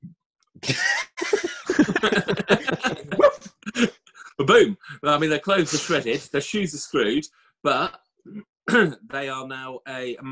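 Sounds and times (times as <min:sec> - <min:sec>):
laughter: 0:00.6 - 0:06.3
speech: 0:02.0 - 0:03.0, 0:04.5 - 0:10.3
person imitating a werewolf's dog bark: 0:02.7 - 0:03.5.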